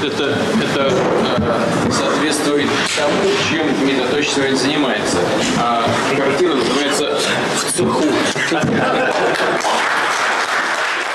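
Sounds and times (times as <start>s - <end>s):
speech: 0.0s - 9.8s
laughter: 6.4s - 10.8s
large crowd applauding: 8.2s - 11.1s.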